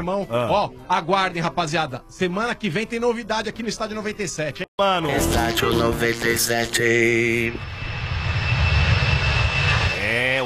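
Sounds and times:
speech: 0.0s - 7.7s
airplane engine drone: 5.1s - 10.4s.

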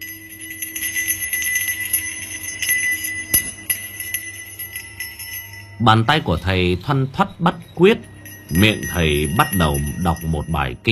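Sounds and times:
ritual bell rung during a ceremony: 0.0s - 10.9s
speech: 5.8s - 10.9s.

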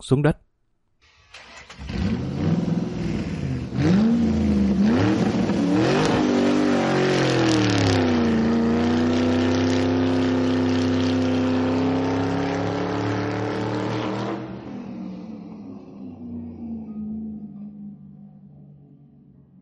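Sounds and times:
speech: 0.0s - 0.5s
racing motorcycle engine revving during a wheelie: 1.8s - 14.9s.

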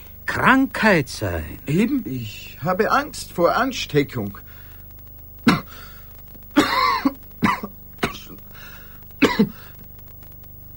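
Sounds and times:
speech: 0.4s - 4.5s
person coughing: 5.5s - 5.8s, 6.6s - 8.4s, 9.2s - 9.7s.

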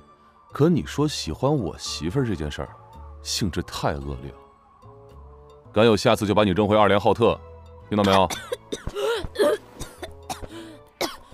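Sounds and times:
speech: 0.6s - 4.4s, 5.8s - 9.4s
child coughing after choking: 8.0s - 11.3s
child throat-clearing: 8.0s - 11.3s.

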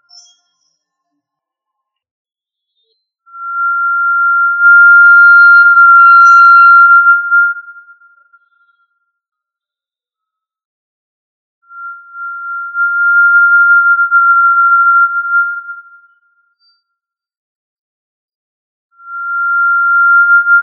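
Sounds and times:
tinamou Tinamidae sustained pure whistle: 3.3s - 8.0s, 11.7s - 16.1s, 19.0s - 20.6s.

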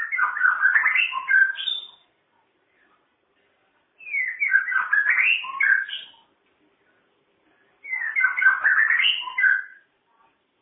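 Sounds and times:
masteran bird song for training cage birds: 0.0s - 2.2s, 4.0s - 6.3s, 7.8s - 9.9s.

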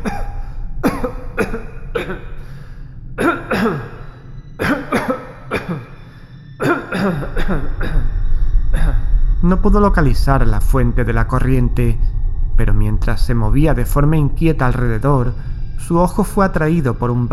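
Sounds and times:
prolonged violent coughing fit: 0.0s - 2.6s, 3.2s - 8.2s
speech: 7.5s - 7.8s, 9.5s - 17.3s.

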